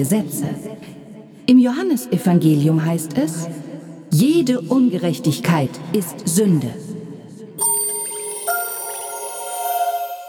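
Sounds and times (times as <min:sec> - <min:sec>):
speech: 0:00.0 - 0:07.0
timer being set and ringing: 0:07.6 - 0:10.2.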